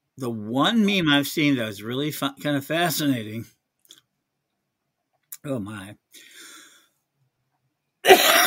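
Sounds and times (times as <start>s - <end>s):
speech: 0.2s - 3.6s, 5.4s - 6.5s
soft breathy sound: 6.1s - 7.1s
loud harsh cough: 8.0s - 8.4s.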